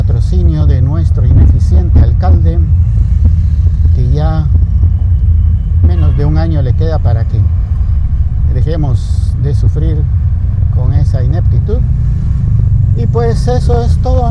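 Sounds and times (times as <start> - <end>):
road traffic rumble of cars and motorcycles: 0.0 - 14.3
speech: 1.7 - 2.9, 6.4 - 7.6, 8.5 - 10.2, 10.8 - 12.1, 13.0 - 14.3.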